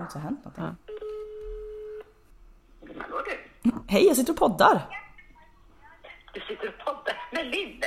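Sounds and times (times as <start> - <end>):
speech: 0.1 - 0.9, 3.3 - 5.0, 6.3 - 7.8
phone ringing tone on an outgoing call: 0.9 - 2.1.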